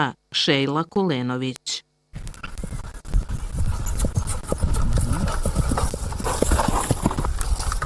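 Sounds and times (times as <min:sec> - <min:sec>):
speech: 0:00.0 - 0:01.9
continuous outdoor hiss: 0:00.0 - 0:07.8
horse hooves clip-clopping: 0:02.2 - 0:07.8.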